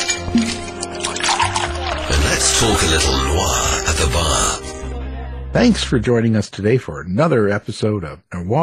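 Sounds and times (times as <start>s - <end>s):
drink pouring into a glass: 0.0s - 3.6s
speech: 2.6s - 4.7s, 5.6s - 8.6s.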